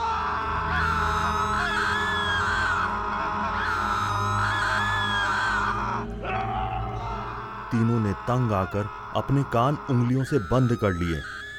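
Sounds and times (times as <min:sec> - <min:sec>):
many voices screaming and wailing together: 0:00.0 - 0:08.0
speech: 0:07.7 - 0:11.3.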